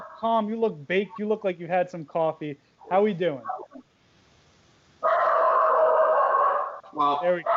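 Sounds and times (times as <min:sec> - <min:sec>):
speech: 0:00.2 - 0:03.6, 0:06.9 - 0:07.5
dog barking: 0:02.8 - 0:03.8, 0:05.0 - 0:07.5.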